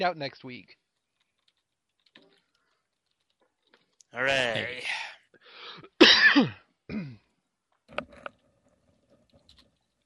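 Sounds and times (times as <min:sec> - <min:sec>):
speech: 0:00.0 - 0:00.8, 0:04.1 - 0:05.0, 0:05.8 - 0:07.1
person coughing: 0:05.9 - 0:07.2.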